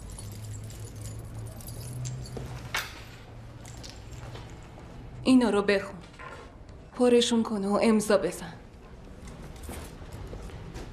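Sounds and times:
locker key on a ring jingling as it is handed over: 0.0s - 2.9s
speech: 5.2s - 6.0s, 7.0s - 8.6s.

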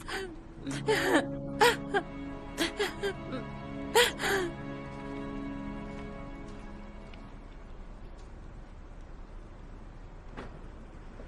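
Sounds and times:
person crying with whimpering sobs and gasping breaths: 0.0s - 4.6s
faint steady hum: 0.0s - 11.2s
speech: 0.6s - 2.1s.

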